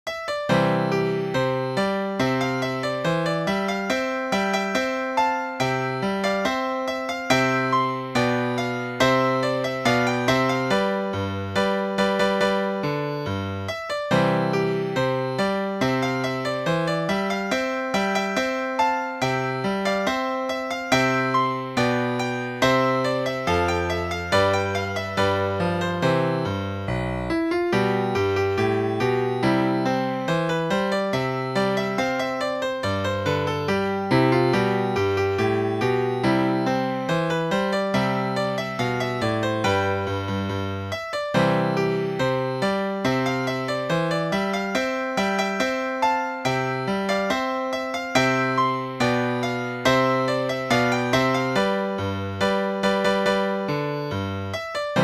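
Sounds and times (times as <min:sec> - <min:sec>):
baroque fanfare on piano: 0:00.1 - 0:55.0.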